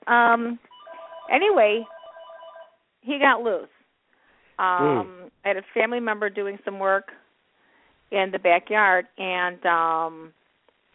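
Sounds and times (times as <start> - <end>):
speech: 0.1 - 0.7, 1.3 - 2.0, 3.0 - 3.8, 4.6 - 7.2, 8.1 - 10.4
telephone ringing with warbling electronic tone: 0.7 - 2.8.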